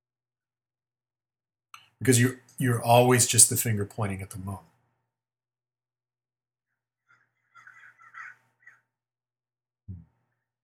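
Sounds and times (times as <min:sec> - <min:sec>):
speech: 0:02.0 - 0:04.7
crows cawing: 0:07.0 - 0:08.9.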